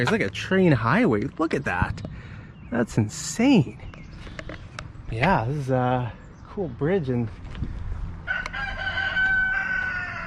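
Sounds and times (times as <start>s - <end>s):
speech: 0.0s - 3.9s, 4.5s - 7.8s
rooster crowing near a railway bridge: 8.2s - 10.2s.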